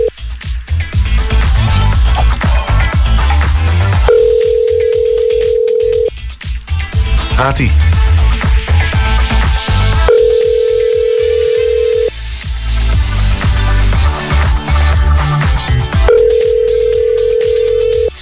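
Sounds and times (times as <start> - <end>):
busy rhythmic music: 0.0 - 18.2
outgoing call ringback tone: 4.1 - 6.1, 10.1 - 12.1, 16.1 - 18.1
speech: 7.4 - 8.0.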